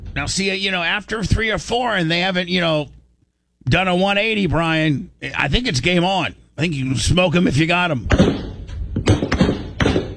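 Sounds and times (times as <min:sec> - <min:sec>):
speech: 0:00.2 - 0:03.0, 0:03.6 - 0:08.4
warning gunshots fired over water: 0:08.0 - 0:10.1.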